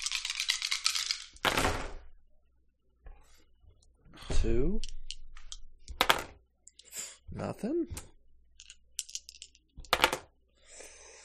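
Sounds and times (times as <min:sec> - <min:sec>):
dice rattling as they are shaken: 0:00.0 - 0:01.6, 0:04.8 - 0:06.3, 0:08.6 - 0:10.3
speech: 0:04.4 - 0:05.0, 0:07.4 - 0:08.1.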